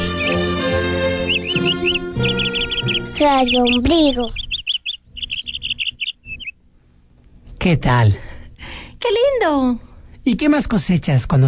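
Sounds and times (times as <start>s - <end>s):
music: 0.0s - 3.8s
small birds chirping: 0.0s - 7.6s
speech: 3.2s - 4.4s, 7.6s - 8.2s, 9.0s - 11.4s.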